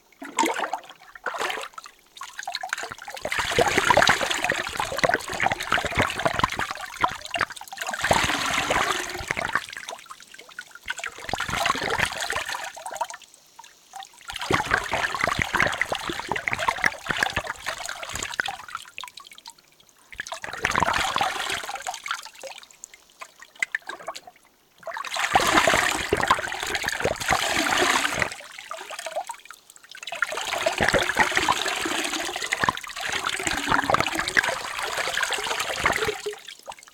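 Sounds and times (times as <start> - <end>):
water rinsing and pouring: 0.0 - 10.1, 10.9 - 12.9, 14.3 - 18.8, 20.1 - 36.8.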